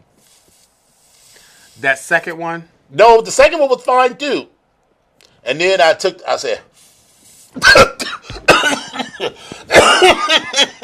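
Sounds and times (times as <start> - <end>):
speech: 1.8 - 4.5, 5.4 - 6.7
person coughing after drawing a mouthful of smoke: 7.6 - 10.3
laughter: 8.3 - 10.8.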